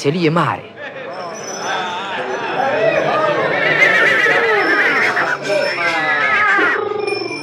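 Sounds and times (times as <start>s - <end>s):
speech: 0.0s - 0.7s
crowd chatter at a horse fair: 0.0s - 6.9s
laughter: 0.6s - 6.8s
tall thin black horse neighing and whinnying at a horse fair: 3.2s - 7.4s.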